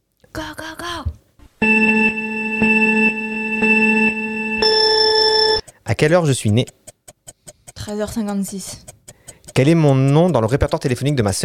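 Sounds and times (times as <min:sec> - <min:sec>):
electronic buzzer tone from a blue timer button: 0:01.6 - 0:05.6
speech: 0:06.0 - 0:06.8, 0:07.9 - 0:08.9, 0:09.6 - 0:11.4.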